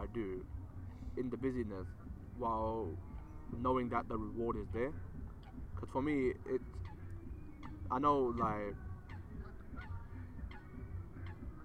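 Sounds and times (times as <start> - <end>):
speech: 0.2 - 0.6, 1.2 - 5.1, 5.8 - 6.9, 7.9 - 8.8
nasal goose-like bird honks: 6.6 - 11.6.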